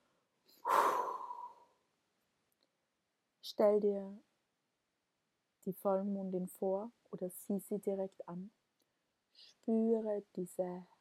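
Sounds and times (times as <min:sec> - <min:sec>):
deep breath in through the nose, out through the mouth during a relaxation exercise: 0:00.5 - 0:01.8
speech: 0:03.5 - 0:04.3, 0:05.6 - 0:08.6, 0:09.4 - 0:10.9.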